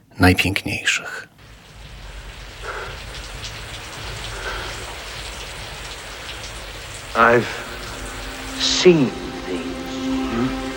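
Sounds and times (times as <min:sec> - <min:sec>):
speech: 0:00.2 - 0:01.3, 0:07.2 - 0:07.6, 0:08.8 - 0:09.2
steady rain pouring down: 0:00.8 - 0:10.7.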